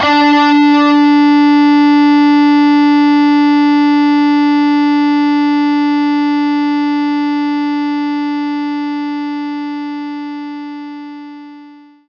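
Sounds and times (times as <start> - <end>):
overdrive guitar playing D4 note: 0.0 - 12.0.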